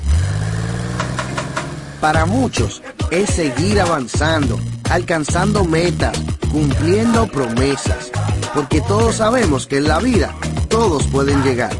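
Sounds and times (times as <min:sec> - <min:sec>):
car engine starting and revving: 0:00.0 - 0:02.8
speech: 0:02.0 - 0:11.7.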